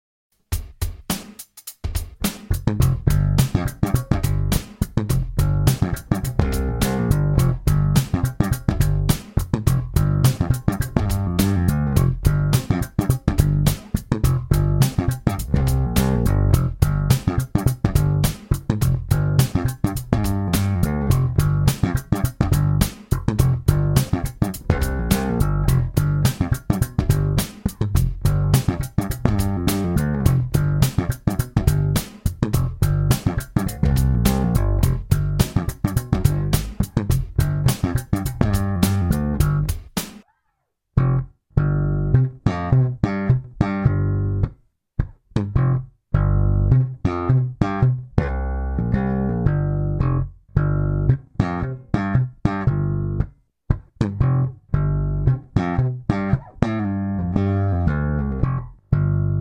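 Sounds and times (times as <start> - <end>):
swing slap bass in G: 1.8 - 40.2, 41.0 - 59.4.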